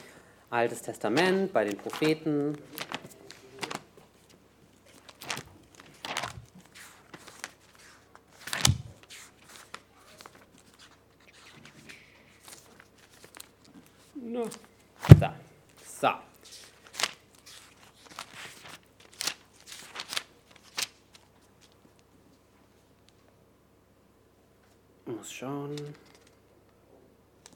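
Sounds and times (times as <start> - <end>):
speech: 0.5 - 2.9
pages flipping: 1.1 - 15.3, 16.4 - 22.0, 25.8 - 26.4
paper sheets rustling: 1.1 - 15.3, 16.4 - 22.0.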